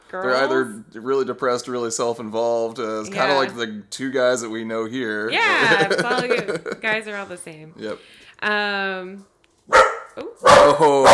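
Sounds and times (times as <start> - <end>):
speech: 0.1 - 11.1
laughter: 3.1 - 3.6, 5.3 - 7.3, 10.7 - 11.1
neighbor's dog barking: 9.7 - 11.1.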